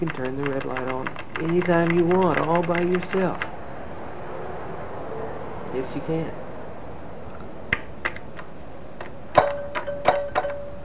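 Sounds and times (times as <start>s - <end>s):
light clicks and taps: 0.0s - 3.5s
speech: 0.0s - 3.5s, 5.7s - 6.4s
small bell dinging: 9.4s - 10.8s.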